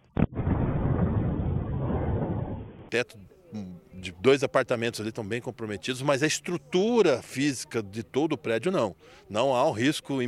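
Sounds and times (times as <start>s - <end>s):
roar and rumble of debris: 0.0s - 2.9s
speech: 2.9s - 10.2s.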